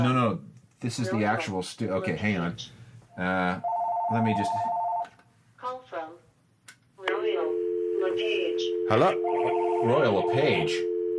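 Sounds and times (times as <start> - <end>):
speech: 0.0 - 4.7, 8.9 - 10.9
studio telephone ringing with electronic trill: 3.6 - 5.1, 7.3 - 11.1.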